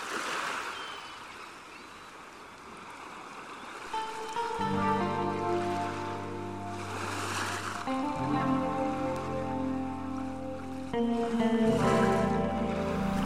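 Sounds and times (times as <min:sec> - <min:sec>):
water rushing in slow rhythmic swells: 0:00.0 - 0:13.2
distant gulls: 0:00.1 - 0:10.4
sustained musical tones: 0:03.9 - 0:13.2.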